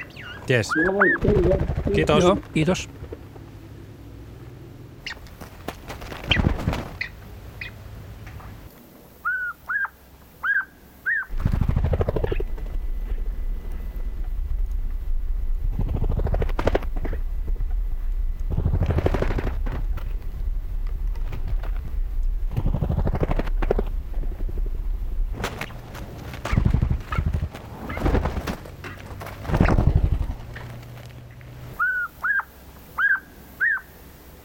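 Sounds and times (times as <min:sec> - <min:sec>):
Siberian jay whistled calls: 0:00.0 - 0:01.2, 0:09.2 - 0:11.3, 0:31.8 - 0:34.0
deep whooshing wingbeats: 0:00.0 - 0:03.4, 0:05.0 - 0:07.7, 0:11.3 - 0:32.5
steady outdoor noise: 0:00.0 - 0:34.4
speech: 0:00.5 - 0:03.0.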